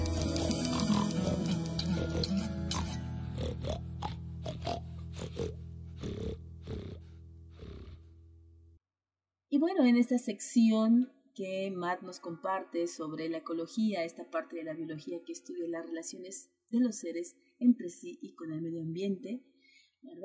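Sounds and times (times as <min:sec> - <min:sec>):
pig oinking and snorting: 0:00.1 - 0:08.1
speech: 0:09.9 - 0:19.5, 0:20.0 - 0:20.2.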